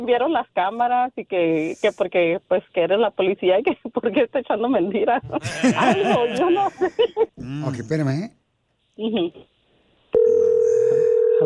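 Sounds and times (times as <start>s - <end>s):
speech: 0.0s - 8.4s, 9.0s - 9.5s
laughter: 5.3s - 7.4s
steady telephone tone as a phone is dialed: 10.2s - 11.4s.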